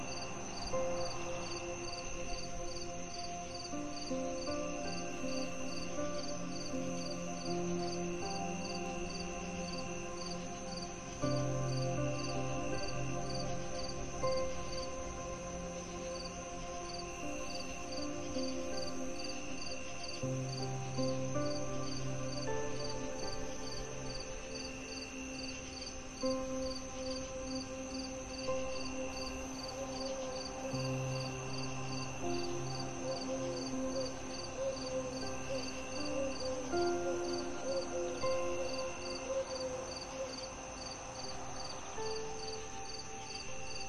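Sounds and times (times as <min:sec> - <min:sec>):
crickets chirping: 0:00.0 - 0:43.8
soft slow music over a low bass note: 0:00.0 - 0:43.8.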